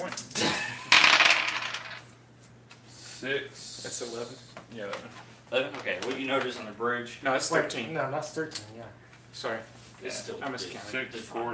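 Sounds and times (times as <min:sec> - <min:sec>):
six-sided dice rolling on a hard table: 0:00.9 - 0:02.1
speech: 0:03.2 - 0:11.5.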